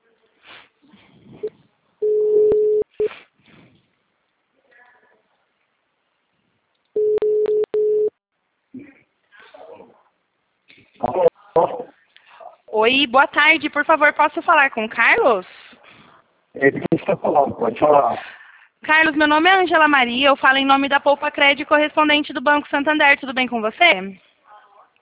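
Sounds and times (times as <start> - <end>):
telephone ringback tone as a call is placed: 2.0 - 2.9, 7.0 - 8.1
speech: 12.8 - 15.6, 16.6 - 24.2.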